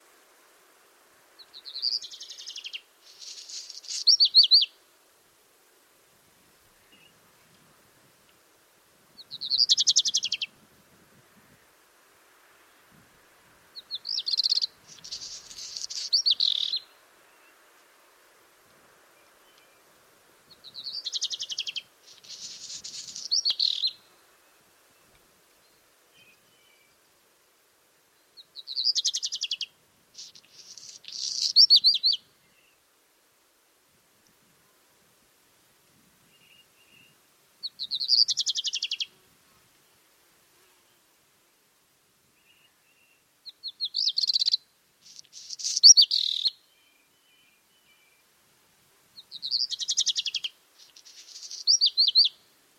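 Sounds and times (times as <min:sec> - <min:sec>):
black redstart singing in Roman quarries: 0:01.4 - 0:04.8, 0:09.2 - 0:10.5, 0:13.8 - 0:17.6, 0:20.5 - 0:27.1, 0:28.3 - 0:32.8, 0:36.3 - 0:39.1, 0:42.4 - 0:48.3, 0:49.2 - 0:52.5.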